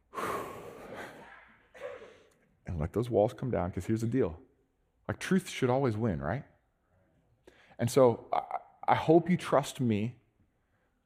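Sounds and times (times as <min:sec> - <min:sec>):
deep breath drawn in through the nose and slowly released: 0:00.0 - 0:01.2
speech: 0:02.8 - 0:04.5, 0:05.1 - 0:06.5, 0:07.8 - 0:10.2.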